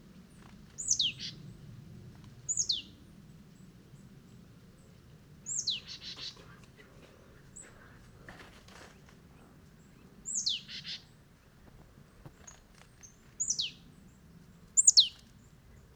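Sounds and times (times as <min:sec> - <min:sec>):
steady low environmental noise: 0:00.0 - 0:15.9
marsh tit giving high falling notes: 0:00.8 - 0:01.4, 0:02.5 - 0:02.9, 0:05.5 - 0:06.5, 0:10.3 - 0:11.1, 0:12.4 - 0:13.8, 0:14.8 - 0:15.2.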